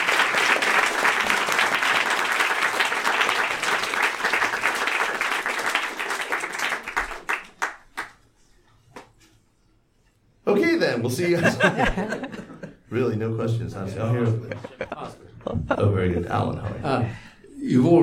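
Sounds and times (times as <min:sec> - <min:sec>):
audience applause: 0:00.0 - 0:08.2
speech: 0:10.6 - 0:18.0
laughter: 0:11.2 - 0:12.9, 0:14.0 - 0:17.3.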